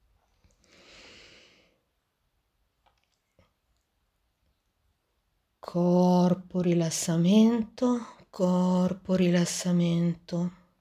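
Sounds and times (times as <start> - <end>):
deep airy inhalation: 0.6 - 1.8
speech: 5.7 - 10.6.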